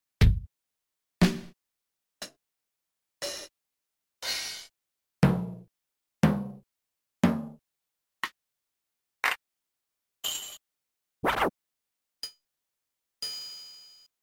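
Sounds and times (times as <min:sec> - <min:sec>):
drums: 0:00.2 - 0:00.5, 0:01.2 - 0:01.6, 0:03.2 - 0:03.5, 0:04.2 - 0:06.6, 0:07.2 - 0:07.6.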